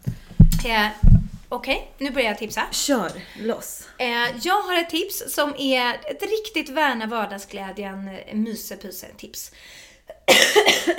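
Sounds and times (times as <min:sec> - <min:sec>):
speech: 0:00.6 - 0:10.9
harsh raspy cough: 0:10.1 - 0:10.9.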